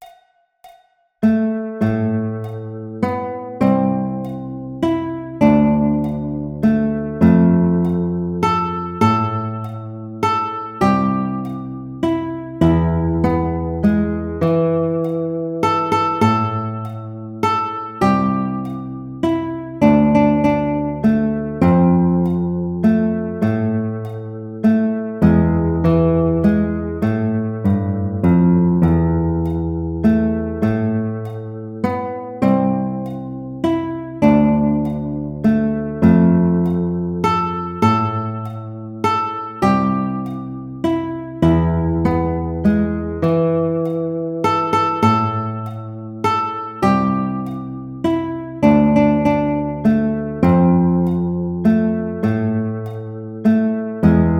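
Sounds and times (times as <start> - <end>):
alto guitar: 1.2 - 54.3.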